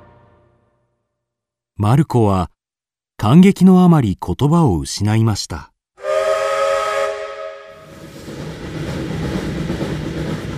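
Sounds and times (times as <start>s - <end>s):
speech: 1.8s - 2.6s, 3.2s - 5.7s
steam train whistle: 6.0s - 8.0s
moving steam train rumbling and hissing: 6.0s - 10.5s.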